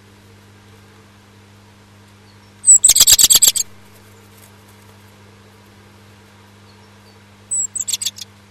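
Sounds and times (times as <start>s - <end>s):
low steady hum: 0.0s - 8.4s
high sharp bird chirping at a nest box: 2.6s - 3.9s, 7.5s - 8.4s.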